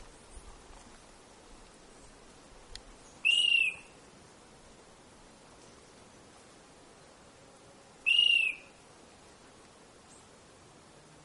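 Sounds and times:
Rufous antpitta G. rufula saltuensis whistling: 8.1s - 8.6s.

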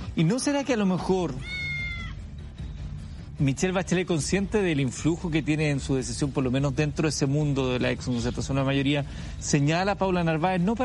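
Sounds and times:
speech: 0.2s - 1.6s, 3.4s - 10.8s
high thin cat meow: 1.4s - 2.2s.

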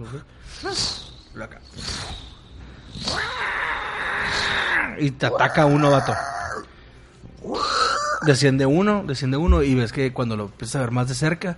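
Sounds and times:
speech: 0.0s - 3.6s, 4.3s - 6.7s, 8.2s - 11.5s
person imitating a vulture's cry with harsh screeches: 0.5s - 6.7s, 7.4s - 8.3s.

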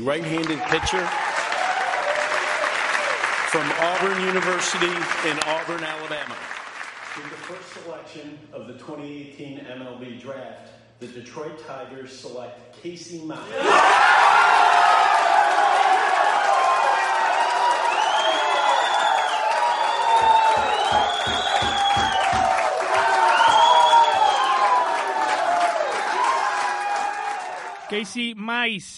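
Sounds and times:
speech: 0.0s - 1.3s, 3.5s - 6.6s, 7.2s - 14.4s, 27.9s - 28.9s
large crowd cheering: 0.0s - 7.6s, 13.5s - 28.4s
burst of clapping: 0.0s - 8.0s, 13.9s - 28.0s
high whoops and whistles: 17.7s - 24.9s.

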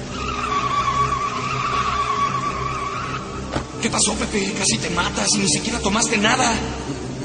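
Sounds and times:
car tires screeching in a skid as driver loses control: 0.0s - 4.0s
car hum: 0.0s - 7.2s
speech: 3.8s - 7.0s.

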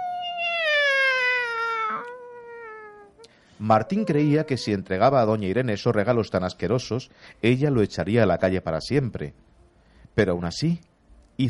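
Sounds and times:
cat meowing sadly: 0.0s - 3.1s
speech: 3.6s - 9.4s, 10.2s - 11.4s.

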